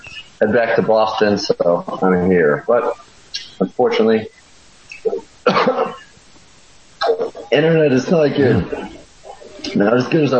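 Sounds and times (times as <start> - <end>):
speech: 0.4 - 4.4, 5.0 - 6.0, 7.1 - 9.0, 9.7 - 10.3
person coughing over a poor internet call: 5.4 - 6.1.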